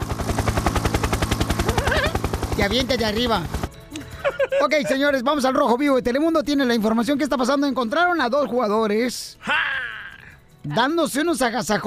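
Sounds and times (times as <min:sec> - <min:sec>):
helicopter rotor chopping: 0:00.0 - 0:03.9
laughter: 0:01.6 - 0:02.2, 0:03.9 - 0:05.2
speech: 0:02.6 - 0:03.6, 0:04.6 - 0:09.6, 0:10.6 - 0:11.8.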